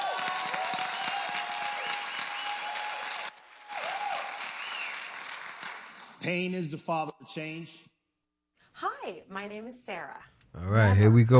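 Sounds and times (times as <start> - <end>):
crowd clapping: 0.0 - 6.3
speech: 6.2 - 7.9, 8.8 - 11.3.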